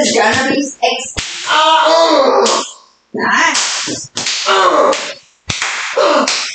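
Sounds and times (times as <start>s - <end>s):
excited voices: 0.0s - 5.2s
speech: 0.1s - 5.0s
dragon tail whip swishing and cracking: 3.6s - 6.5s.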